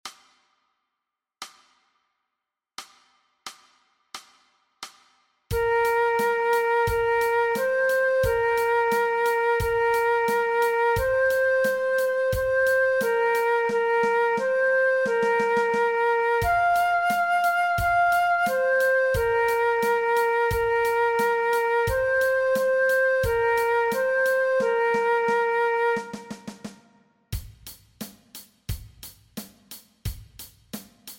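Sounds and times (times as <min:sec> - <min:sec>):
transverse flute playing along with a play-along track: 0:05.5 - 0:26.9.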